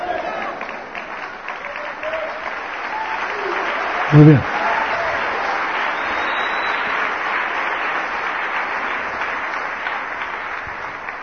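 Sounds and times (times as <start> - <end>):
church congregation applauding during a sermon: 0.0 - 11.2
speech: 4.1 - 4.5.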